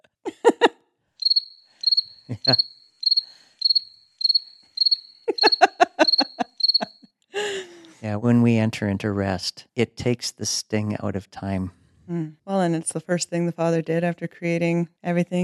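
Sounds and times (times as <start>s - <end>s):
laughter: 0.3s - 0.7s, 2.3s - 2.6s, 5.3s - 6.6s, 7.4s - 11.6s
deep rasping croaks: 1.2s - 5.0s
crickets chirping: 1.2s - 7.0s
speech: 2.3s - 2.9s, 8.0s - 15.4s.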